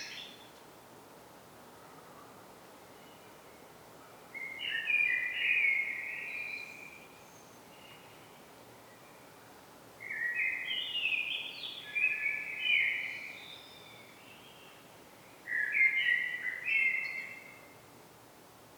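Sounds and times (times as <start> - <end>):
common blackbird Turdus merula song: 0.0 - 0.5, 4.4 - 9.2, 10.0 - 17.8.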